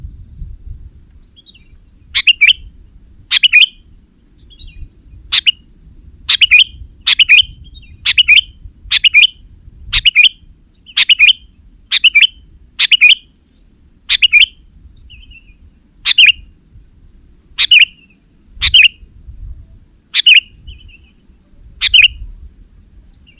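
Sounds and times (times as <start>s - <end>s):
low background rumble: 0.0s - 23.3s
sooty-headed bulbul chirpy song: 2.2s - 2.7s, 3.3s - 3.8s, 5.3s - 5.6s, 6.3s - 9.4s, 10.0s - 13.3s, 14.1s - 14.6s, 16.0s - 16.5s, 17.6s - 19.0s, 20.1s - 21.2s, 21.8s - 22.2s.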